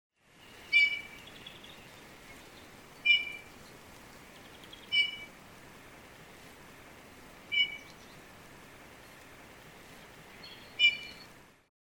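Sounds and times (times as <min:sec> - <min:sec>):
Eurasian bullfinch calling: 0:00.4 - 0:01.9, 0:03.0 - 0:03.5, 0:04.4 - 0:05.3, 0:07.5 - 0:08.2, 0:10.3 - 0:11.3.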